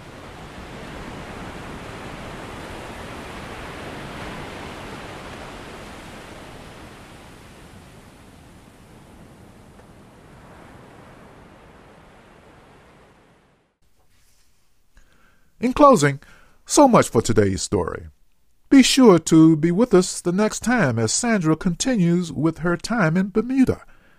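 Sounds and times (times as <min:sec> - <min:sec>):
ocean waves washing in a broadband roar: 0:00.0 - 0:13.8
speech: 0:15.6 - 0:18.2, 0:18.8 - 0:23.9.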